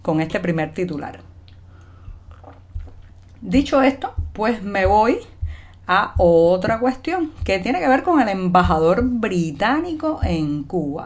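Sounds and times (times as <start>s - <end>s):
speech: 0.0s - 1.3s, 3.4s - 11.0s
sipping a drink: 1.8s - 3.4s.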